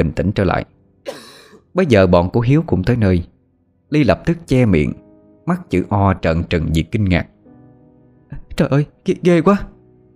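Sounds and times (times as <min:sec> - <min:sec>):
speech: 0:00.0 - 0:01.2, 0:01.8 - 0:03.3, 0:03.9 - 0:07.3, 0:08.6 - 0:09.7
old man harsh throaty cough: 0:01.1 - 0:01.6.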